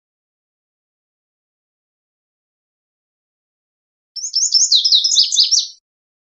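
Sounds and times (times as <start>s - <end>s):
Lazuli bunting song with high scratchy paired chirps and slurred notes: 4.2s - 5.8s.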